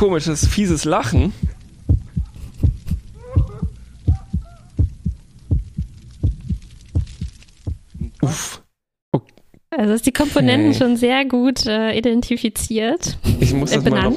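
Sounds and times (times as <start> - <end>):
speech: 0.0 - 1.4, 9.8 - 14.1
heartbeat sound effect thumping: 0.0 - 8.2.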